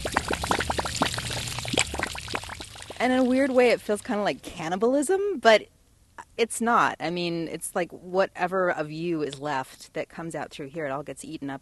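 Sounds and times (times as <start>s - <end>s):
soapy washing-machine water gushing out of a black drain tube outside during the spin cycle: 0.0s - 4.2s
speech: 3.0s - 5.8s, 6.4s - 11.6s.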